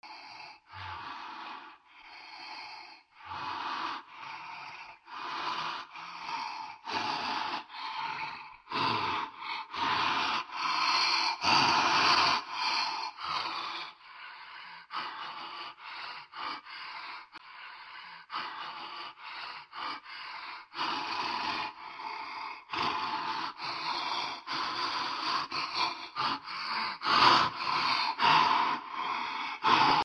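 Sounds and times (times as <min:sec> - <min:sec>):
dark heavy breathing: 0:00.0 - 0:30.0.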